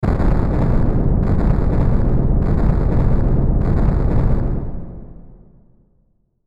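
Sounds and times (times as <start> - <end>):
rhythmic reverb crackle bursts: 0.0 - 5.1.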